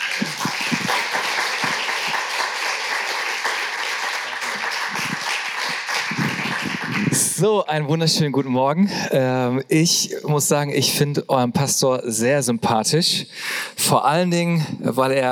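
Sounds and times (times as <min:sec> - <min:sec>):
audience applauding a guest speaker: 0:00.0 - 0:07.5
speech: 0:07.4 - 0:15.3.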